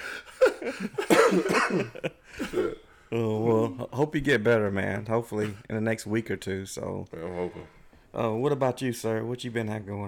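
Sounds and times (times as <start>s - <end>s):
person coughing harshly: 0.4s - 2.8s
speech: 0.6s - 10.0s.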